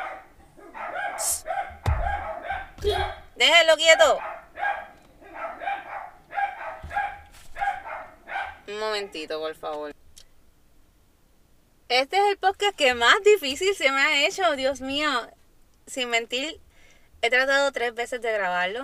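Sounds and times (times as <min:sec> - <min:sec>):
several dogs barking frantically: 0:00.0 - 0:09.2
speech: 0:03.4 - 0:04.3, 0:08.7 - 0:10.0, 0:11.9 - 0:16.6, 0:17.2 - 0:18.8.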